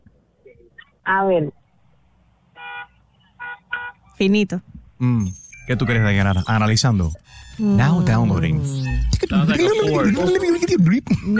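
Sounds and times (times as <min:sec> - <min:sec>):
speech: 0:00.6 - 0:01.6, 0:04.2 - 0:11.3
car horn honking: 0:02.6 - 0:04.0.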